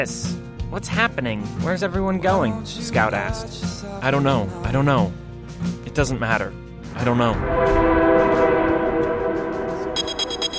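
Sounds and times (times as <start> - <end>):
speech: 0.0 - 8.4
train starting up and pulling away: 7.3 - 10.5.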